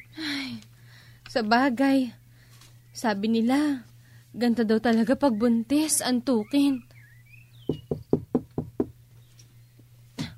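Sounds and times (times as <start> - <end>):
low steady hum: 0.0 - 10.3
speech: 1.3 - 2.2, 3.0 - 6.9
solid knocks on a house door: 7.7 - 9.0.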